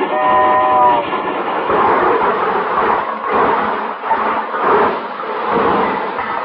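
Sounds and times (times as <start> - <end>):
presidential special train horn: 0.0 - 1.1
presidential special train rumbling into a station: 0.0 - 6.4.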